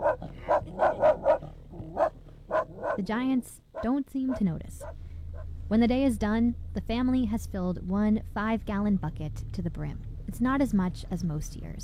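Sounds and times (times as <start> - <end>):
dogs barking from a boat at muskox on shore: 0.0 - 5.5
speech: 3.0 - 4.9, 5.7 - 11.8.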